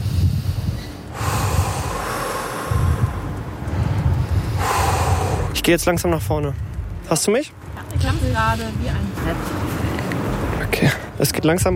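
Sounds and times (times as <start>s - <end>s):
person breathing deeply in and out at the edge of a drop: 0.0s - 5.7s
steady rumbling wind noise: 0.0s - 11.7s
speech: 5.6s - 9.8s, 10.7s - 11.7s.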